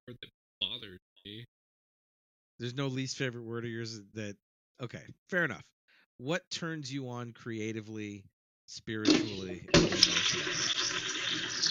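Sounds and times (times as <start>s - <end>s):
speech: 2.6s - 11.6s
water running from a tap: 9.1s - 11.6s.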